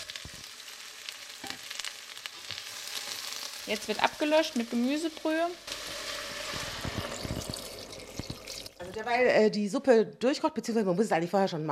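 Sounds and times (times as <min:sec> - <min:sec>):
sugar snap peas and glassy onions frying in a pan: 0:00.0 - 0:09.2
speech: 0:03.7 - 0:05.8, 0:09.0 - 0:11.7.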